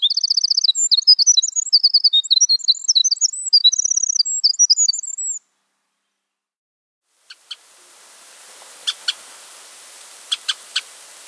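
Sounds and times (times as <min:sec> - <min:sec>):
wren song in winter: 0:00.0 - 0:05.5, 0:07.2 - 0:11.2.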